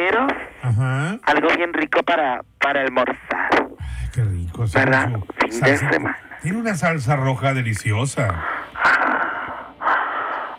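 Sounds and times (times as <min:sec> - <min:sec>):
speech: 0:00.1 - 0:09.0
heavy panting after running: 0:08.4 - 0:10.5.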